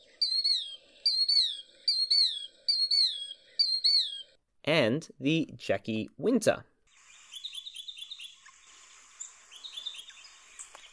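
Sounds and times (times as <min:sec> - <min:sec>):
killdeer calling: 0:00.0 - 0:04.4, 0:06.9 - 0:10.9
speech: 0:04.7 - 0:06.7.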